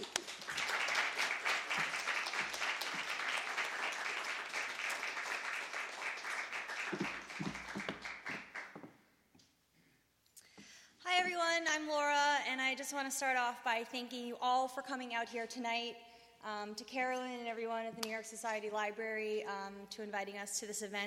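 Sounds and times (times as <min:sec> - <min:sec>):
audience applause: 0:00.0 - 0:08.8
speech: 0:11.6 - 0:21.0.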